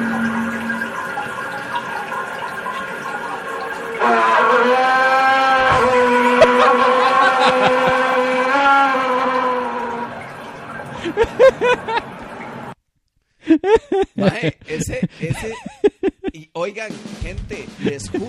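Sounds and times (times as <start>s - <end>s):
toilet tank refilling with running water: 0.0s - 12.8s
laughter: 5.7s - 8.3s, 11.0s - 12.1s, 13.5s - 16.4s, 17.6s - 18.2s
speech: 13.6s - 15.7s, 16.6s - 18.2s.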